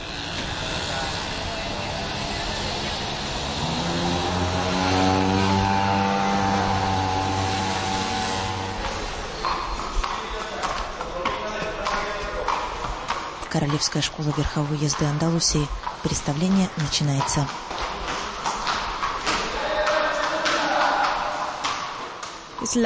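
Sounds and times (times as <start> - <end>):
motor scooter buzzing past in a market square: 0.0 - 10.2
steady street noise in a market square: 0.0 - 22.8
speech: 13.6 - 17.9.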